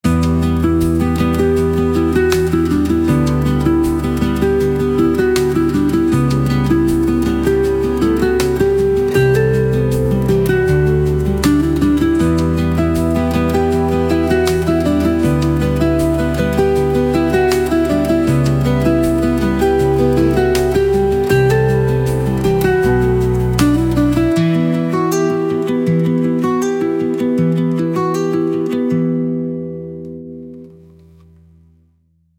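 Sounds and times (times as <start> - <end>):
acoustic guitar stings: 0.1 - 31.6.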